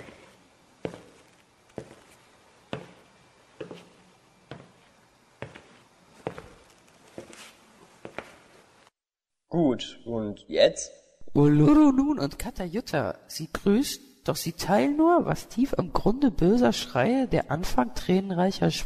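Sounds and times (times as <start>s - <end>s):
footsteps walking at a steady unhurried pace: 0.0s - 9.0s
speech: 9.6s - 18.8s.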